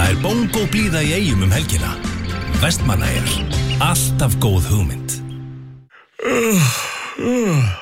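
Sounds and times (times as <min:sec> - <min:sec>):
speech: 0:00.1 - 0:05.2, 0:06.2 - 0:07.8
person yawning: 0:06.0 - 0:07.8.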